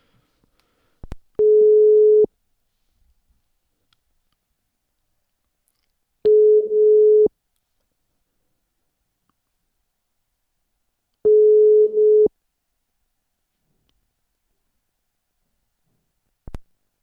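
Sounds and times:
telephone ringback tone during an outgoing call: 1.4s - 2.3s, 6.3s - 7.3s, 11.3s - 12.3s.

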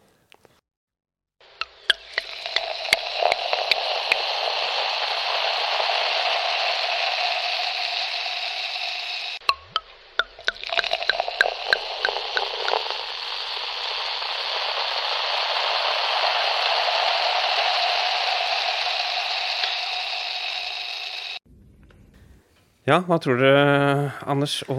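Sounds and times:
sparkling wine fizzing and crackling in a glass: 1.6s - 21.4s
speech: 22.9s - 24.7s.

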